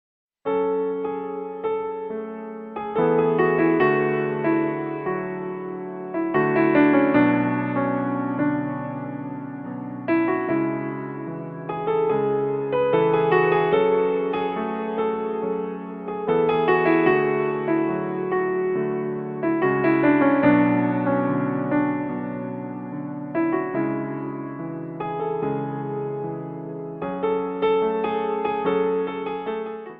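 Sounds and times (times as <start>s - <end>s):
piano song ringtone: 0.4s - 29.9s.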